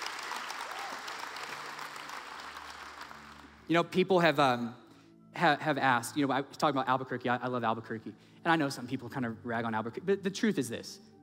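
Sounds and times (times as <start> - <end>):
audience applause: 0.0 - 3.6
speech: 3.7 - 4.8, 5.4 - 11.1.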